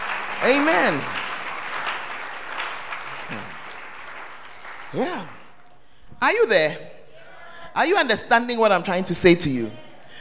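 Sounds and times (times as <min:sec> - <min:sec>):
crowd applauding: 0:00.0 - 0:05.8
speech: 0:00.4 - 0:01.2, 0:04.9 - 0:05.4, 0:06.2 - 0:06.9, 0:07.7 - 0:10.2.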